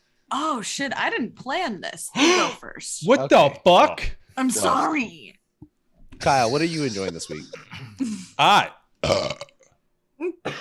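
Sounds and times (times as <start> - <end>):
speech: 0.3 - 5.4, 6.2 - 9.5, 10.2 - 10.5
rough gravelly belch: 9.0 - 9.7
loud drawn-out burp: 9.0 - 9.8.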